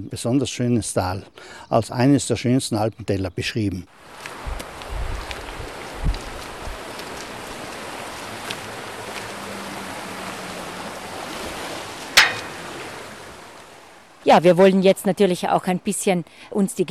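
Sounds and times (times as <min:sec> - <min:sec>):
speech: 0:00.0 - 0:04.4, 0:14.3 - 0:16.8
mountain stream flowing in an Alpine valley: 0:03.9 - 0:14.3
sharp click: 0:12.2 - 0:12.9
soft low knocks: 0:12.2 - 0:13.4.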